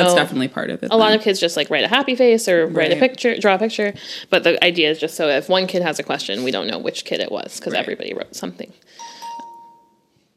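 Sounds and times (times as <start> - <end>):
speech: 0.0 - 9.1
phone notification chime, a bright electronic ding: 9.0 - 10.1.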